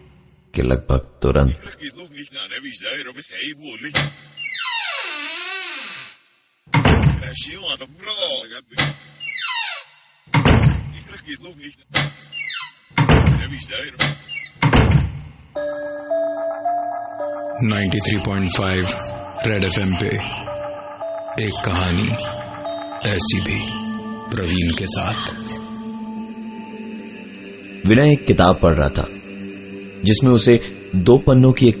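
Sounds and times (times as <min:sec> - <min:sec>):
speech: 0:00.6 - 0:04.7, 0:07.2 - 0:09.1, 0:11.2 - 0:12.2, 0:13.5 - 0:14.3, 0:15.6 - 0:20.4, 0:21.4 - 0:22.4, 0:23.0 - 0:25.6, 0:27.9 - 0:29.2, 0:30.0 - 0:31.7
room door slamming: 0:06.7 - 0:07.4, 0:08.8 - 0:11.0, 0:12.0 - 0:15.3
steady electronic tones: 0:15.6 - 0:27.8.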